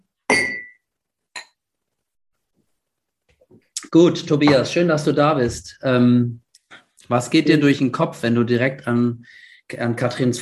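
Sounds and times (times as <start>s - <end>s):
glasses clinking in a toast: 0.3s - 0.8s
speech: 3.9s - 6.4s, 7.1s - 10.3s.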